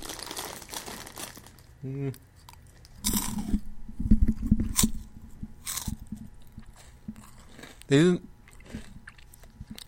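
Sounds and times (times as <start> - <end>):
crunchy chip chips being chewed: 0.0 - 3.6, 4.6 - 9.8
person humming: 1.8 - 2.2.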